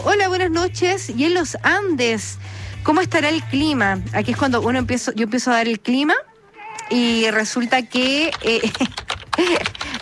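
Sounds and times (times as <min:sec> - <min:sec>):
speech: 0:00.1 - 0:06.3, 0:06.9 - 0:09.9
typing on a computer keyboard: 0:07.9 - 0:09.9.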